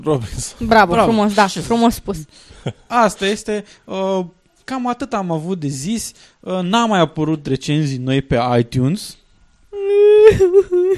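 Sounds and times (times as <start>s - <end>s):
speech: 0.0s - 9.2s, 10.0s - 10.9s
person fake crying and wailing: 9.8s - 10.9s.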